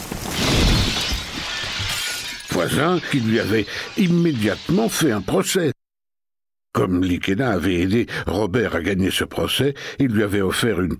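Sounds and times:
tree crashing through a glass veranda: 0.0s - 5.3s
shattering tinkling glass: 0.3s - 5.3s
speech: 2.6s - 5.8s, 6.8s - 10.9s.

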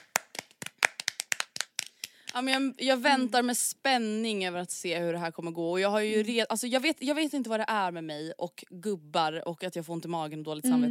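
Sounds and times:
hand clapping: 0.0s - 2.6s
speech: 2.3s - 10.9s.

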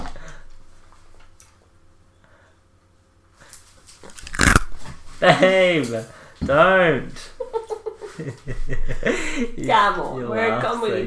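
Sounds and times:
crunching ice cubes by chewing: 4.0s - 4.8s
speech: 5.2s - 7.3s, 8.2s - 11.0s
laughter: 7.2s - 9.6s.

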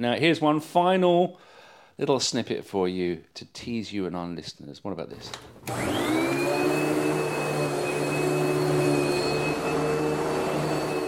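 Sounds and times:
speech: 0.0s - 6.6s
vacuum cleaner running: 5.6s - 11.0s.

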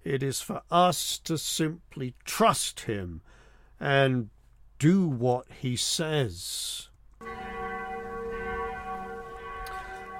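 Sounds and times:
speech: 0.1s - 6.9s
mission bell ringing: 7.2s - 10.1s.

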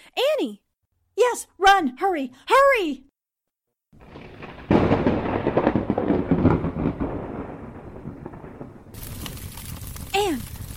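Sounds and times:
speech: 0.4s - 0.6s, 1.2s - 3.1s, 10.2s - 10.5s
lightning crack bursting into rumbling thunder crash: 4.0s - 10.7s.

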